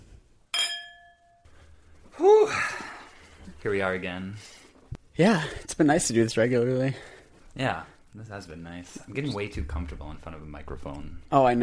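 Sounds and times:
wine glasses clinking together: 0.5 - 1.5
speech: 3.6 - 4.6, 5.2 - 11.6.

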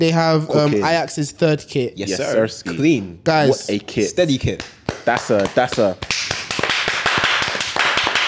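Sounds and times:
speech: 0.0 - 6.1
loud rapid hand clapping: 4.4 - 8.2.

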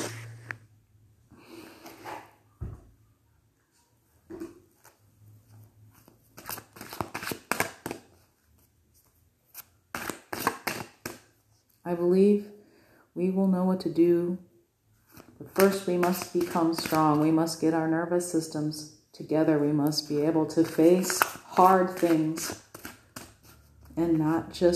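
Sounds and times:
deck of cards being shuffled: 0.0 - 0.6, 6.0 - 11.3, 15.1 - 17.2, 20.6 - 24.0
speech: 11.9 - 12.5, 13.2 - 14.5, 15.6 - 22.6, 24.0 - 24.7.

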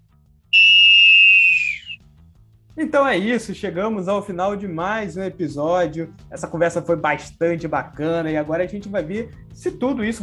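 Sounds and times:
referee's final whistle blast: 0.5 - 2.0
speech: 2.8 - 10.2.

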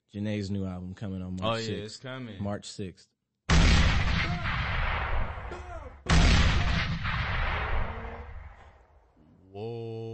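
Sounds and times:
speech: 0.1 - 3.6
bomb explosion sound effect booms: 3.5 - 8.9.

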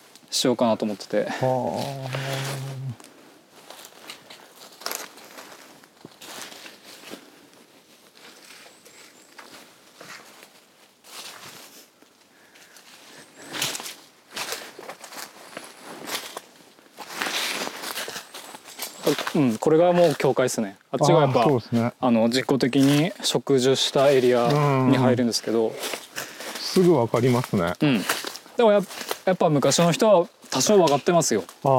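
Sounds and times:
speech: 0.3 - 3.2, 19.4 - 26.0, 26.8 - 31.7
soft footsteps walking along the faint trace of an old track: 1.4 - 20.4, 24.0 - 31.7.

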